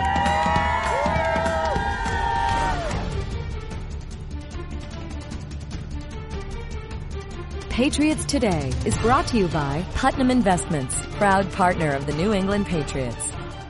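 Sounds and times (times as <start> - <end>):
large crowd screaming and cheering: 0.0 - 3.2
speech: 7.8 - 13.4.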